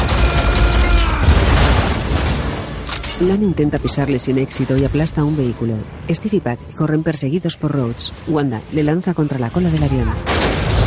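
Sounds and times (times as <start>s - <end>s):
rapid gunfire tearing apart a metal walkway: 0.0s - 2.6s
speech: 3.2s - 10.6s.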